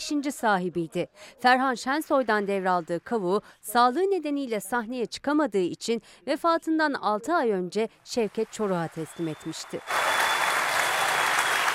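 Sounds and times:
speech: 0.1s - 10.2s
theatre audience applauding: 8.6s - 11.7s.

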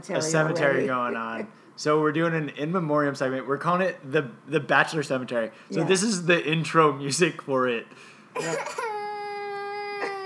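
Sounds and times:
speech: 0.0s - 8.9s
child crying: 8.4s - 10.2s.

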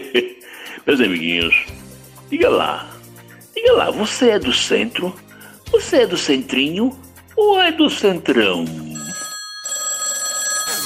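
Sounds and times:
laughter: 0.0s - 0.4s
speech: 0.1s - 2.9s, 3.6s - 9.0s
electronic telephone ringing: 8.8s - 10.8s.

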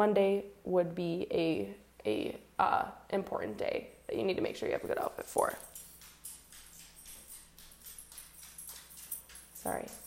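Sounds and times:
speech: 0.0s - 5.7s, 9.6s - 10.0s
house dog claws clicking on a hard floor: 4.9s - 10.0s.

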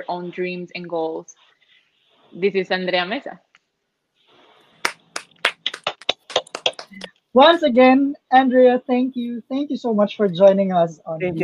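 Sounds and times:
speech: 0.0s - 1.6s, 2.3s - 3.5s, 6.9s - 11.4s
hands clapping: 4.8s - 7.1s.

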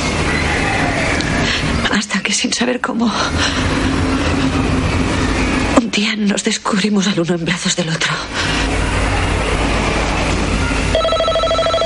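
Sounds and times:
dense rumbling noise: 0.0s - 11.8s
speech: 2.6s - 4.2s, 6.1s - 8.9s
telephone bell ringing: 10.9s - 11.8s.

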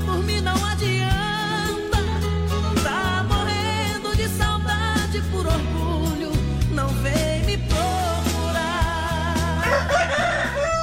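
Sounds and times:
music with a pulsing low bass beat: 0.0s - 10.8s
rooster crowing: 9.6s - 10.8s.

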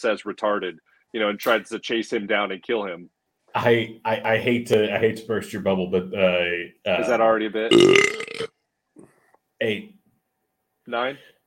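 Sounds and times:
speech: 0.0s - 8.5s, 9.6s - 10.0s, 10.9s - 11.4s
loud burp: 7.7s - 8.5s.

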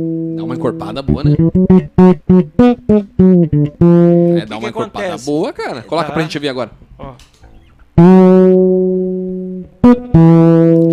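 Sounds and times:
instrument playing loud sustained notes with reverb effect: 0.0s - 4.5s, 8.0s - 10.9s
speech: 0.0s - 7.3s, 8.0s - 8.8s, 10.1s - 10.6s.

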